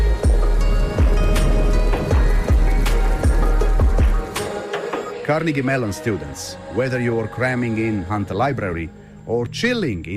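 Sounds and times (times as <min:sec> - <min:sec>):
soft rain falling: 0:00.0 - 0:05.1
speech: 0:05.3 - 0:10.1.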